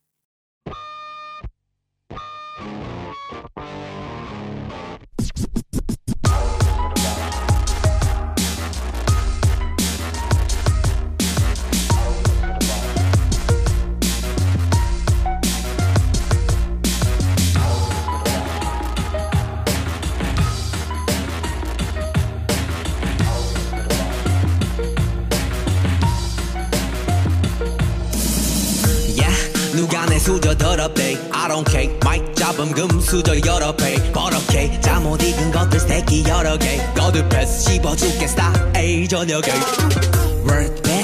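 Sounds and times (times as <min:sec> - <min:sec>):
K-pop hip-hop track with synth stabs and heavy bass beat: 0:05.3 - 0:41.0
speech: 0:33.1 - 0:34.5, 0:35.1 - 0:40.8.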